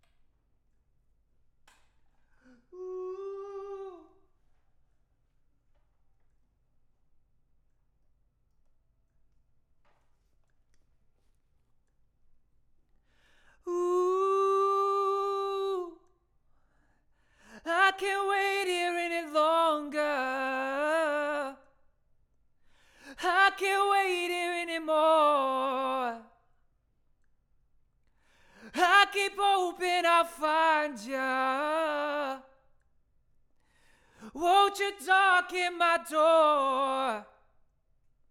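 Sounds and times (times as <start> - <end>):
vocals: 2.4 - 4.3, 13.2 - 21.8, 22.7 - 26.5, 28.2 - 32.9, 33.7 - 37.6.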